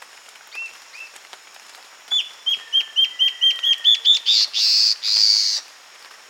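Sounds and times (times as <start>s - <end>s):
Guianan warbling antbird singing: 2.1s - 5.6s.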